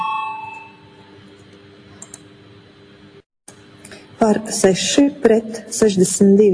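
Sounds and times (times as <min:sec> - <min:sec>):
parliamentary voting bell electronic chime: 0:00.0 - 0:01.1
low room hum: 0:00.0 - 0:06.5
speech: 0:04.2 - 0:06.5.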